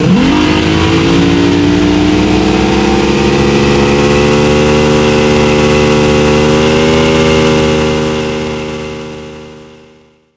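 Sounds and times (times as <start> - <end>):
Zodiac reversed engine rev: 0.0 - 10.1.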